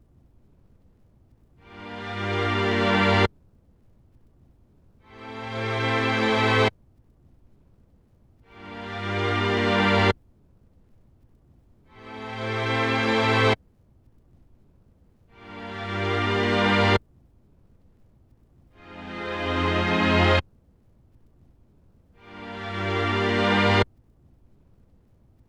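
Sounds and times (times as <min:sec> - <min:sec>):
lo-fi hip hop tape strings playing Am7 at 70 BPM: 0:01.7 - 0:03.3, 0:05.1 - 0:06.7, 0:08.5 - 0:10.2, 0:11.9 - 0:13.6, 0:15.4 - 0:17.0, 0:18.8 - 0:20.4, 0:22.2 - 0:23.9.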